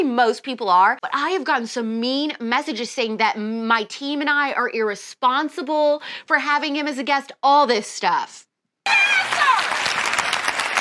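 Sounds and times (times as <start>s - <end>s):
speech: 0.0s - 9.2s
whoops and cheers: 8.9s - 10.0s
crowd applause: 8.9s - 10.7s.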